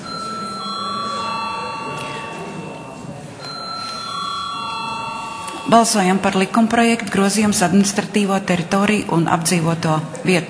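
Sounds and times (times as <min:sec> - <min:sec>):
electric bell rung in a parliament chamber before a vote: 0:00.0 - 0:06.6
speech: 0:05.7 - 0:10.4.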